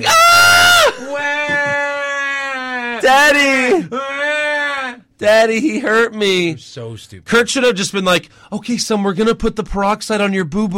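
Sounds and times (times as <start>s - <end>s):
voice imitating a man screaming in pain: 0.0s - 5.1s
speech: 3.0s - 4.1s, 5.2s - 10.7s.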